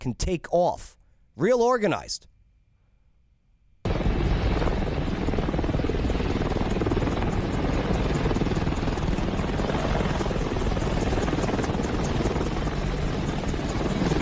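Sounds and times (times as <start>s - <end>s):
speech: 0.0s - 2.3s
Apache attack helicopter rotor roar hovering over an airport runway: 3.9s - 14.1s.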